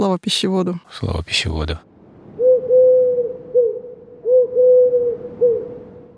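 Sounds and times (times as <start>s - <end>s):
speech: 0.0s - 1.9s
rock pigeon giving hooting coo phrases: 2.4s - 6.1s.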